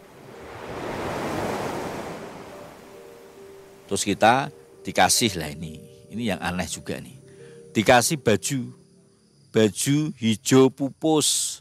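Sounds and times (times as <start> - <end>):
single ocean wave breaking on the shore: 0.0 - 3.4
speech: 3.9 - 8.8, 9.5 - 11.5.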